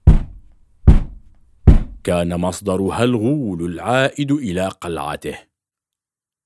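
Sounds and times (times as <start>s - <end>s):
loud heavy knocks on a door: 0.0s - 2.0s
speech: 2.0s - 5.5s.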